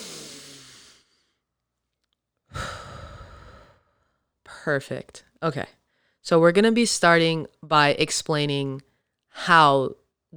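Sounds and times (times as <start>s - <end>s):
person taking deep breaths in and out: 0.0s - 1.5s, 2.5s - 4.4s, 5.8s - 6.2s
speech: 4.6s - 10.3s.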